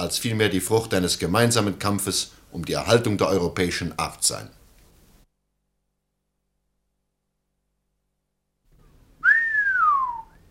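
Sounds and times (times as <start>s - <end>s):
speech: 0.0s - 4.6s
man whistling to himself: 9.2s - 10.4s.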